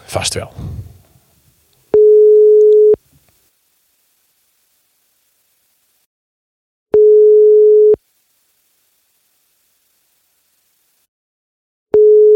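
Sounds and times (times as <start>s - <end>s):
speech: 0.1s - 0.9s
telephone ringback tone while calling a guest: 2.0s - 3.0s, 7.0s - 8.0s, 12.0s - 12.3s.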